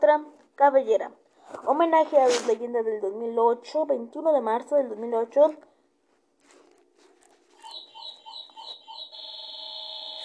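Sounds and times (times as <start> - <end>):
speech: 0.1 - 5.7
small electronic clock alarm chirping and ringing: 7.6 - 10.2.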